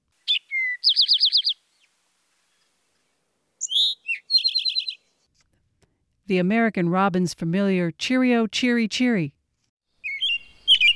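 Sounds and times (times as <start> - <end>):
eastern towhee singing: 0.3 - 1.6, 3.6 - 5.2, 10.0 - 10.9
speech: 6.3 - 9.4.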